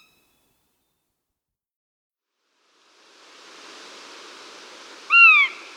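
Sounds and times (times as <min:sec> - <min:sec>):
Northern goshawk wailing call: 0:05.1 - 0:05.7.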